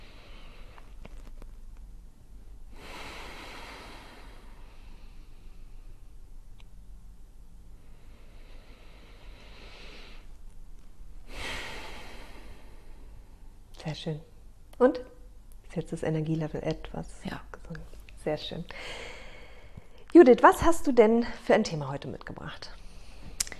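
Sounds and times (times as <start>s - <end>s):
slow deep breathing during a guided relaxation exercise: 0.0s - 1.2s, 2.7s - 6.2s, 7.7s - 13.7s, 18.6s - 20.0s
low steady hum: 0.0s - 23.5s
speech: 13.9s - 15.1s, 15.7s - 19.2s, 20.1s - 22.8s.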